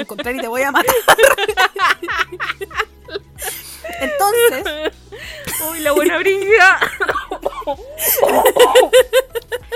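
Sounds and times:
speech: 0.0s - 3.2s, 5.6s - 7.1s
laughter: 0.0s - 9.7s
loud coughing fit: 6.8s - 9.1s.

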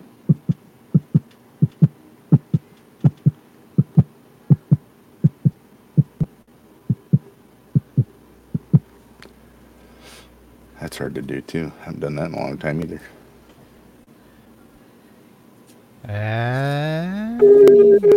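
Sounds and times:
voice imitating a heartbeat with paired low thumps: 0.3s - 6.3s, 6.9s - 7.2s, 7.8s - 8.9s, 16.0s - 18.0s
speech: 11.0s - 13.2s.

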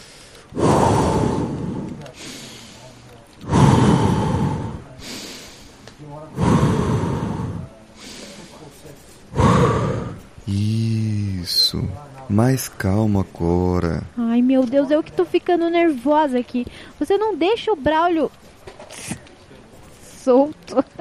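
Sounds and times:
slow deep breathing in and out: 0.0s - 11.2s, 16.7s - 17.0s
speech: 10.5s - 10.8s, 11.7s - 18.4s, 20.2s - 20.9s.

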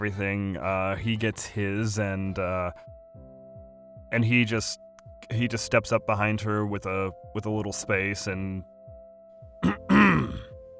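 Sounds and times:
speech: 0.0s - 3.0s, 4.1s - 8.7s
man clearing his throat: 9.6s - 10.5s.

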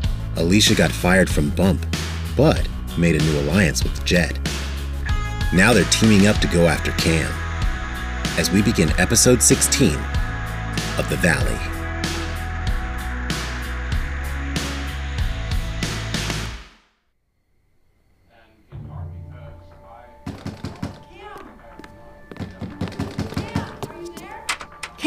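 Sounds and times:
music: 0.0s - 16.8s, 18.2s - 25.0s
speech: 0.4s - 4.5s, 5.5s - 7.4s, 8.4s - 10.2s, 11.0s - 11.8s
loud rapid pounding on a door: 20.2s - 21.1s.

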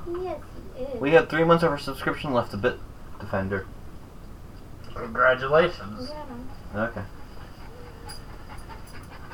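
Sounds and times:
speech: 0.1s - 3.8s, 5.0s - 7.2s
dog panting: 6.0s - 9.3s.

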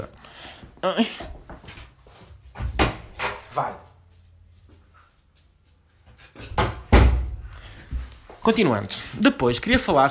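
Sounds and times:
speech: 0.8s - 1.4s, 3.6s - 3.9s, 8.4s - 10.0s
wooden door being opened to let dog out: 2.6s - 3.5s, 6.5s - 7.4s.

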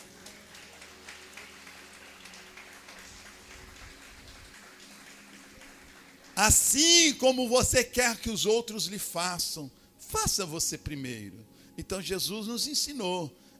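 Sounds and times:
crowd applauding: 0.0s - 7.2s
speech: 6.4s - 13.5s.

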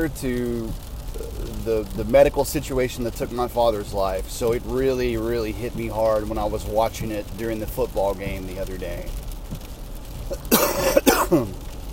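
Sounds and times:
speech: 0.0s - 9.2s, 11.3s - 11.6s
person coughing harshly: 10.3s - 11.6s.

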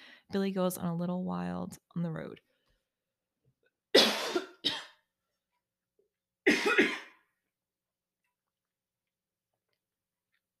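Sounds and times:
speech: 0.3s - 2.5s
dry coughing from a tickle in the throat: 3.9s - 5.0s, 6.4s - 7.2s.

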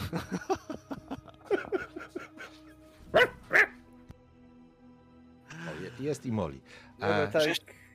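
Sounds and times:
laughter: 0.0s - 2.8s
speech: 0.1s - 0.5s, 6.0s - 7.8s
dog barking and yipping as it is let into the house: 3.1s - 3.8s.

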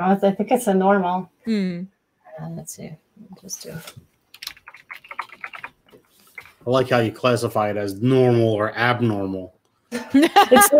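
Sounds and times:
speech: 0.0s - 4.1s, 6.6s - 10.7s
typing on a non-mechanical computer keyboard: 4.3s - 6.5s
laughter: 10.0s - 10.7s.

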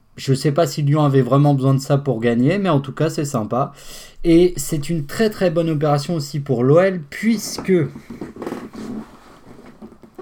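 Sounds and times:
speech: 0.2s - 9.0s
quiet rustle: 7.2s - 10.2s
office chair creaking as someone shifts weight: 7.4s - 10.2s.

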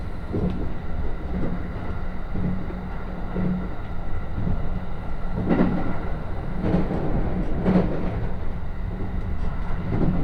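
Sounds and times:
steady low rumble inside a moving train: 0.0s - 10.2s.

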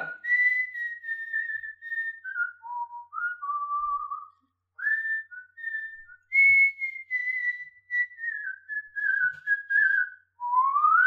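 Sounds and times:
person whistling a flowing solo melody: 0.0s - 11.0s.

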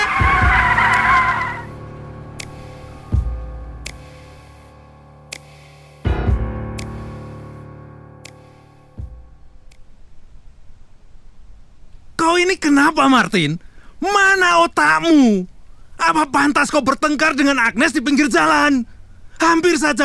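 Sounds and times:
car braking hard at the roadside with harsh tire skid: 0.0s - 3.1s
car engine idling: 0.0s - 4.6s
speech: 12.4s - 20.0s.

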